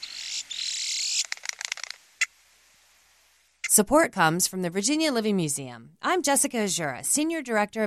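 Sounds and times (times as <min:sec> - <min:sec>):
grackle calling: 0:00.0 - 0:02.4
speech: 0:03.8 - 0:07.8.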